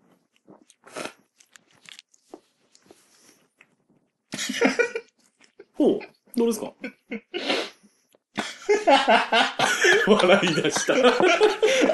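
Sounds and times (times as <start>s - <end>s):
person biting and chewing a banana cooked in miso soup: 0.0s - 4.3s, 5.0s - 5.7s
laughter: 4.4s - 5.1s, 8.4s - 11.9s
speech: 5.8s - 7.5s, 8.8s - 11.9s.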